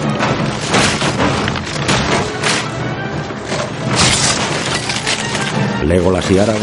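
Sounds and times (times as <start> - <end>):
heavy wooden door cracking and splintering as it is battered: 0.2 - 2.8, 3.5 - 5.7
speech: 5.9 - 6.6.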